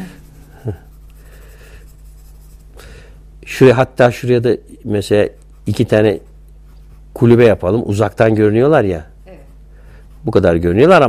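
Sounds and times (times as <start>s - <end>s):
pencil stroke scratching across paper: 0.0s - 2.7s, 5.1s - 7.6s
low steady hum: 0.0s - 11.0s
speech: 0.6s - 0.9s, 3.4s - 6.3s, 7.2s - 9.1s, 10.2s - 11.0s.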